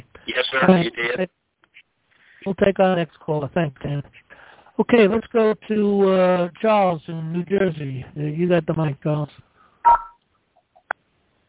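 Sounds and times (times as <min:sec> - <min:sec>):
speech: 0:00.3 - 0:01.4, 0:02.4 - 0:04.2, 0:04.8 - 0:10.1
faint blips: 0:09.9 - 0:10.2
telephone keypad tones as star and 6 are pressed: 0:09.9 - 0:10.2.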